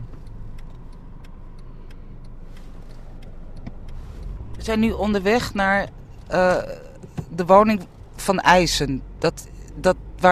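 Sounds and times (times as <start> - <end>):
light ticking clicks: 0.0 - 8.2
car engine rumble as a car arrives in Schonebeek: 0.0 - 10.3
speech: 4.7 - 6.8, 7.4 - 10.3.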